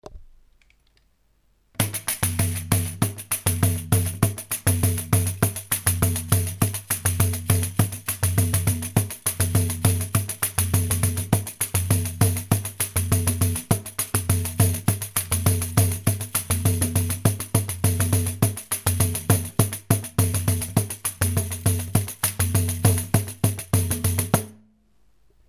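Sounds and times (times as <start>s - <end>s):
pandeiro playing: 1.8s - 24.6s.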